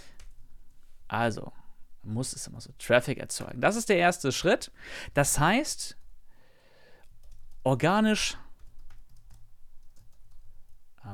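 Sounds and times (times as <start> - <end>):
speech: 1.1 - 6.0, 7.6 - 8.4
typing on a computer keyboard: 7.0 - 7.6, 8.6 - 10.5.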